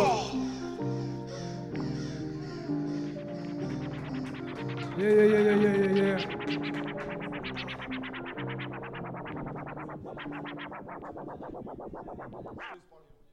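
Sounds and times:
steady music bed: 0.0 - 13.0
DJ turntable scratching: 2.6 - 13.3
speech: 5.0 - 6.3.

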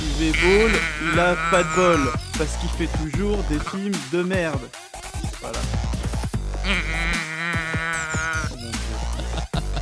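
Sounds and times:
moo box toy being tilted: 0.1 - 2.3, 6.7 - 8.5
laughter: 0.2 - 2.2, 6.7 - 9.8
speech: 0.2 - 4.8, 5.5 - 5.8, 6.7 - 7.3.

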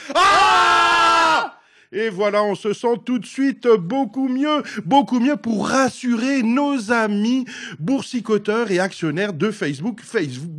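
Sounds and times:
several voices screaming together: 0.0 - 1.6
speech: 0.1 - 0.4, 1.9 - 10.5.

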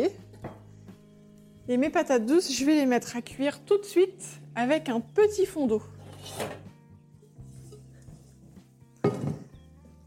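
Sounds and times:
speech: 1.7 - 6.6
metal pots clattering as a large saucepan is pulled out: 5.9 - 9.6.

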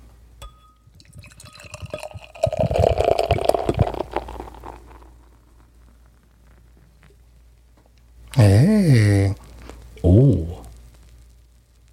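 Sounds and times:
fizzing gurgling stream of drink: 1.0 - 5.6
drink from a 500 ml can pouring into a glass: 1.0 - 5.7
speech: 8.6 - 9.4.

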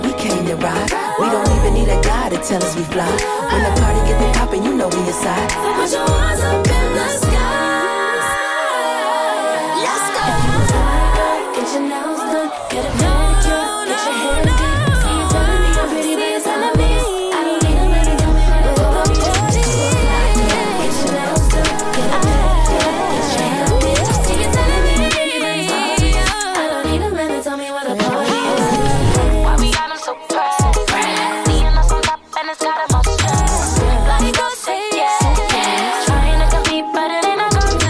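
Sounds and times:
instrumental hip-hop R&B groove with synth melodies: 0.0 - 37.8
speech: 0.5 - 7.8, 11.7 - 14.9
punchy deep bass kicks: 1.5 - 2.3, 3.6 - 4.6, 6.1 - 7.6, 10.7 - 11.2, 13.0 - 13.5, 14.4 - 15.9, 16.8 - 20.5, 21.4 - 22.8, 23.7 - 25.1, 26.0 - 26.4, 29.2 - 29.8, 31.5 - 32.0, 32.9 - 34.4, 36.1 - 36.6.

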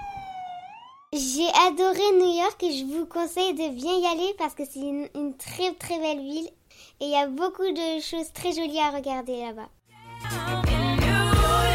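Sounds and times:
ambulance siren wailing: 0.0 - 1.2
speech: 1.1 - 10.6.

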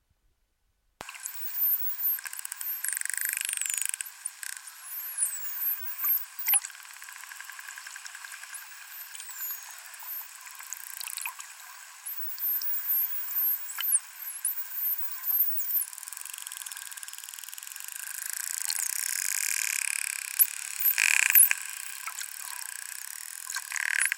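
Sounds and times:
bottlenose dolphin echolocation clicks underwater: 1.0 - 11.5, 12.2 - 24.1
faint underwater hiss: 1.0 - 24.1
bottlenose dolphin whistles underwater: 1.2 - 3.8, 4.8 - 6.6, 8.6 - 10.3, 12.1 - 15.8.

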